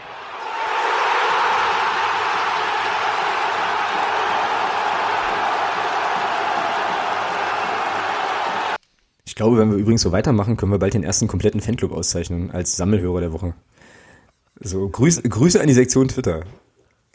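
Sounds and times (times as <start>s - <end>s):
crowd cheering: 0.0s - 8.8s
speech: 9.4s - 13.7s, 14.6s - 16.7s.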